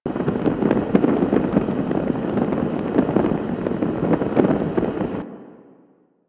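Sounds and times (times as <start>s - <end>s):
flames burning: 0.0s - 5.2s.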